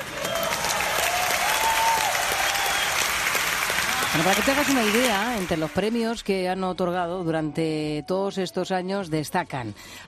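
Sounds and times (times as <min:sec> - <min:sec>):
large audience applauding at an awards ceremony: 0:00.0 - 0:06.0
speech: 0:04.2 - 0:10.0.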